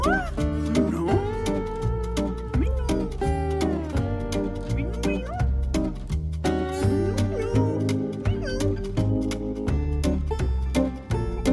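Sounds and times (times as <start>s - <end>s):
speech: 0.0s - 0.7s
loud bouncy music with steady bass beat and sung melody: 0.0s - 11.5s
cat meowing: 7.4s - 8.8s.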